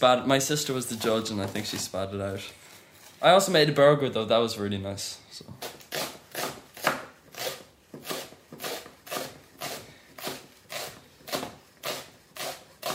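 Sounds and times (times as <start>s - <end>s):
speech: 0.0s - 2.6s, 3.2s - 5.8s
knife chopping carrots and celery on a cutting board: 5.6s - 12.9s.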